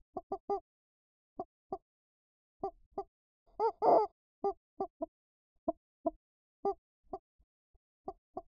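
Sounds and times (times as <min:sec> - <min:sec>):
muffled chicken clucks: 0:00.0 - 0:00.6, 0:02.6 - 0:05.1, 0:08.0 - 0:08.4.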